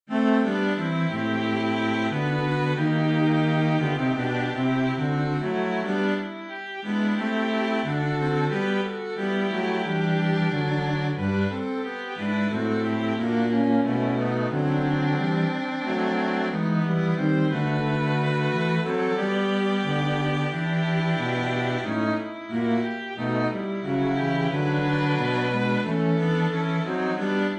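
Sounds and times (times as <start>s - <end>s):
music piece from a full score: 0.1s - 27.5s.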